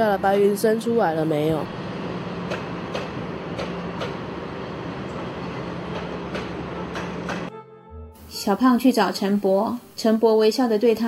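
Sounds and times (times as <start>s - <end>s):
speech: 0.0s - 1.9s, 2.5s - 3.1s, 8.4s - 11.0s
train rumbling on rails: 0.0s - 7.5s.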